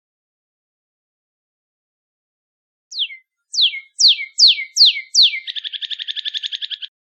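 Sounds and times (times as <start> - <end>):
northern cardinal singing: 3.0 - 5.5.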